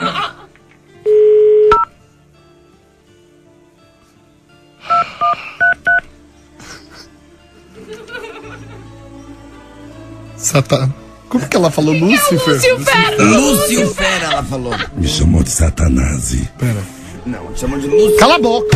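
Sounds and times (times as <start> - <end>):
laughter: 0.0 - 0.6, 7.7 - 9.0, 12.9 - 15.3
steady phone tone: 1.1 - 1.9, 17.8 - 18.7
touch-tone beeps of a phone number being dialed: 4.9 - 6.0
speech: 10.5 - 18.7.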